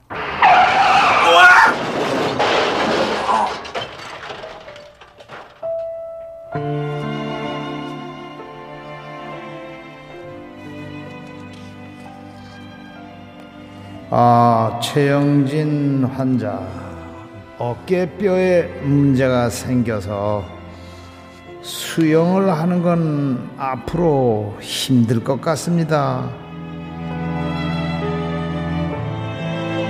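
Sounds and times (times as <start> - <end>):
car tires screeching in a traffic accident at night: 0.0 - 3.7
soft sustained music: 5.6 - 29.8
speech: 14.9 - 16.9, 17.6 - 20.6, 21.6 - 26.4.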